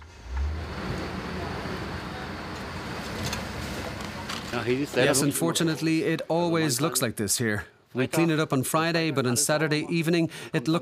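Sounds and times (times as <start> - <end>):
waste collection truck engine rumbling while driving and turning in Berlin: 0.0 - 5.3
broad road noise: 0.0 - 6.0
speech: 4.6 - 10.8.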